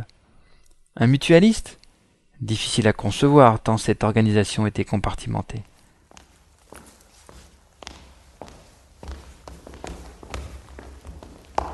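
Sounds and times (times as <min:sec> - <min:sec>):
speech: 0:01.0 - 0:01.8, 0:02.4 - 0:05.7
many footsteps on a hard corridor floor: 0:05.7 - 0:11.7.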